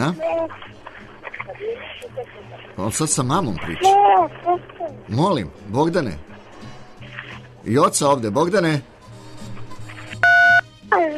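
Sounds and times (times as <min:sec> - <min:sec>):
speech: 0:00.0 - 0:00.8, 0:01.5 - 0:06.3, 0:07.6 - 0:08.9
telephone keypad beep: 0:10.2 - 0:10.6.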